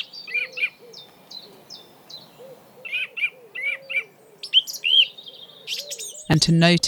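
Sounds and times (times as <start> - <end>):
birds singing with high bright chirps: 0.0 - 6.8
speech: 6.3 - 6.8.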